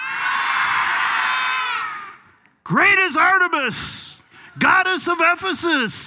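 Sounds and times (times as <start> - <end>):
audience yelling a sustained Ah in unison: 0.0 - 2.2
speech: 2.7 - 4.0, 4.6 - 6.0.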